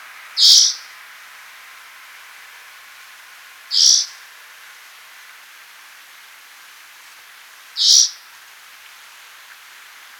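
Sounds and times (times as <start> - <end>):
light background hiss: 0.0 - 10.1
spotted forktail sharp high call: 3.7 - 4.1, 7.8 - 8.2.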